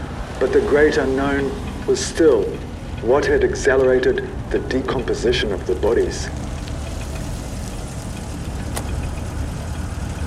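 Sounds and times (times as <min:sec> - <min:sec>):
car engine idling while parking outside a house: 0:00.0 - 0:10.2
speech: 0:00.4 - 0:06.5
soft mechanical click: 0:07.0 - 0:09.8.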